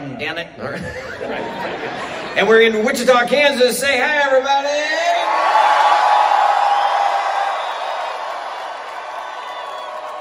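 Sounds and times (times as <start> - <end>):
speech: 0.2 - 5.6
laughter: 0.7 - 2.5
live audience cheering and whooping: 5.2 - 10.1.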